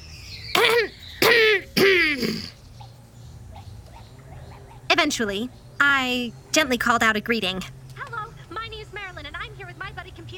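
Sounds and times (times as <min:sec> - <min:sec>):
short raspy deliberate coughs: 0:00.6 - 0:02.6
speech: 0:05.2 - 0:07.8.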